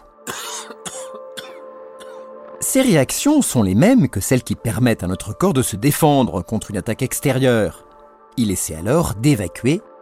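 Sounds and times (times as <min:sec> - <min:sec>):
harsh coughs: 0:00.2 - 0:02.3
speech: 0:02.8 - 0:10.0.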